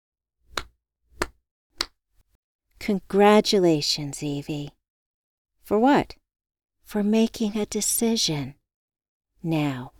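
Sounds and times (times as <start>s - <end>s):
single person clapping hands: 0.5s - 2.0s
speech: 2.9s - 4.8s, 5.7s - 6.2s, 6.9s - 8.6s, 9.4s - 9.9s.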